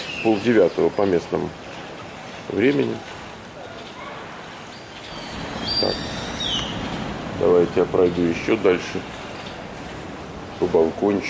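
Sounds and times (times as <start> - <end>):
birds singing faintly in the morning: 0.0 - 1.0, 4.6 - 7.1
steady outdoor hiss: 0.0 - 11.2
speech: 0.2 - 1.6, 2.5 - 3.2, 5.8 - 6.1, 7.4 - 9.2, 10.6 - 11.2.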